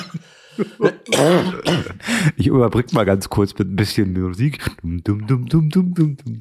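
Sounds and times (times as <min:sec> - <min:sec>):
person coughing with raspy hacking and throat-clearing: 0:00.0 - 0:02.4
speech: 0:00.6 - 0:06.4.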